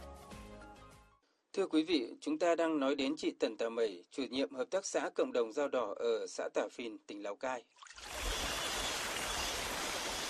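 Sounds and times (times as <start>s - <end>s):
speech: 1.6s - 8.0s
small stream babbling and rushing: 7.9s - 10.2s.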